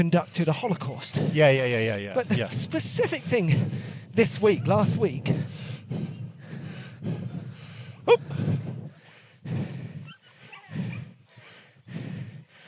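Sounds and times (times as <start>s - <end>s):
speech: 0.0s - 6.2s, 8.1s - 8.6s
dogs barking and snarling at each other: 3.6s - 12.6s
dog yelping: 10.0s - 11.2s.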